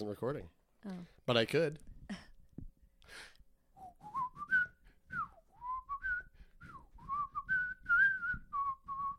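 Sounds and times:
speech: 0.0s - 2.2s
person whistling a short melodic tune: 3.8s - 9.1s.

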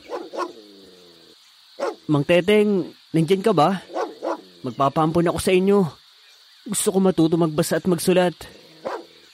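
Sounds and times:
dog barking: 0.0s - 0.7s, 1.8s - 2.1s, 3.8s - 4.5s, 8.8s - 9.2s
speech: 2.1s - 3.9s, 4.6s - 6.0s, 6.6s - 8.6s.

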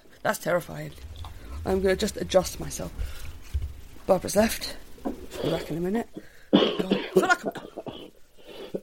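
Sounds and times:
speech: 0.2s - 3.2s, 4.1s - 7.6s
coughing fit with harsh rasping coughs: 6.6s - 8.1s.

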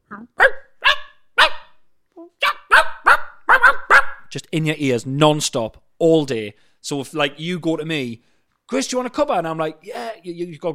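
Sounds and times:
dog barking: 0.4s - 1.8s, 2.4s - 4.3s
speech: 4.3s - 10.7s.

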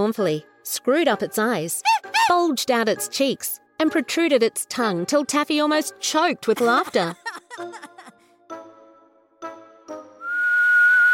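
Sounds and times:
speech: 0.1s - 7.9s
laughter: 6.6s - 8.2s
low steady breathy whistle from outside: 10.2s - 11.1s.

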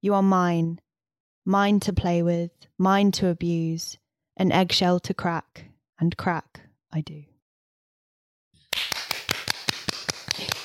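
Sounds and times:
speech: 0.0s - 0.8s, 1.5s - 7.3s
people clapping: 8.7s - 10.6s.

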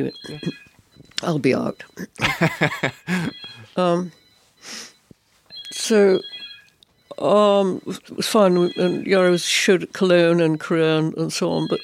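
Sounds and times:
speech: 0.0s - 4.8s, 5.9s - 6.3s, 7.2s - 11.8s
phone ringing with a high electronic tone: 0.0s - 11.8s
laughter: 2.2s - 3.4s.

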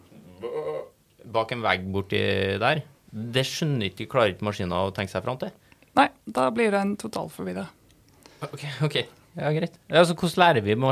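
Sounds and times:
person imitating a muffled nasal sheep bleat: 0.2s - 1.0s
speech: 1.3s - 7.8s, 8.4s - 10.9s.

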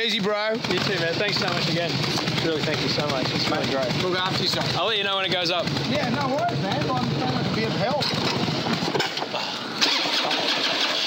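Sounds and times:
speech: 0.0s - 8.7s
car engine with a bigger cam starting and idling: 0.0s - 11.0s.

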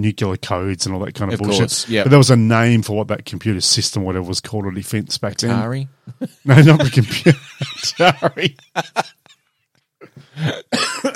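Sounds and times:
speech: 0.0s - 9.2s
laughter: 6.1s - 9.3s
person coughing: 10.0s - 11.1s.

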